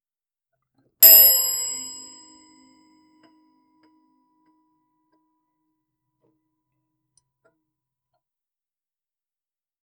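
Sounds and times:
single high pitched chime: 0:01.0 - 0:02.3.

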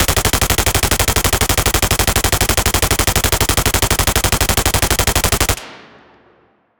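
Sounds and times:
clean sci-fi machine gun firing: 0:00.0 - 0:06.3.

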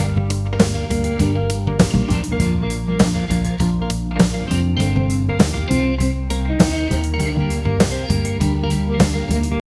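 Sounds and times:
lo-fi rock instrumental: 0:00.0 - 0:09.6.

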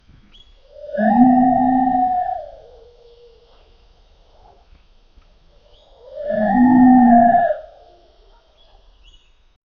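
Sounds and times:
spectral bear roar: 0:00.8 - 0:03.2, 0:06.0 - 0:08.0.

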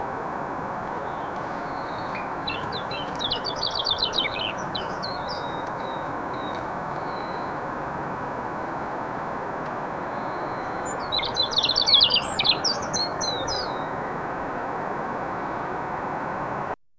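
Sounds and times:
garden nature ambience: 0:00.0 - 0:16.6.

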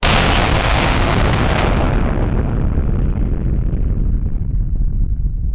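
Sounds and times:
roaring fire: 0:00.0 - 0:05.4.

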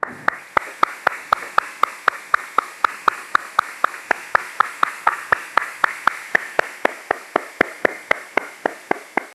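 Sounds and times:
plapping sound: 0:00.0 - 0:09.3.

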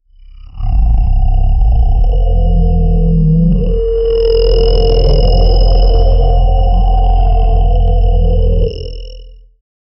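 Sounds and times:
robotic bear groaning: 0:00.5 - 0:09.0.

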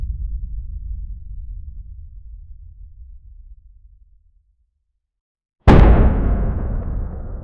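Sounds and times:
lo-fi muffled underground battlefield sounds: 0:05.7 - 0:07.4.

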